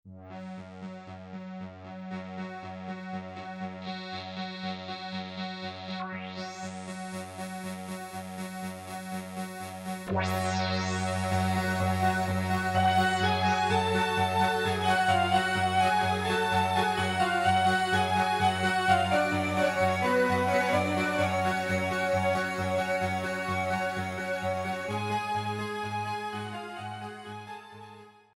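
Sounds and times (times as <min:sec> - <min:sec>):
Siel Cruise polyphonic synthesizer: 0:00.2 - 0:28.2.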